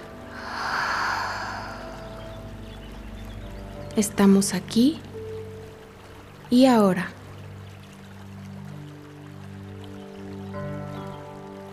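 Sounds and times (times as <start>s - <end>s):
deep breath drawn in and let out during a guided therapy session: 0.2s - 2.6s
speech: 4.0s - 5.1s, 6.5s - 7.2s.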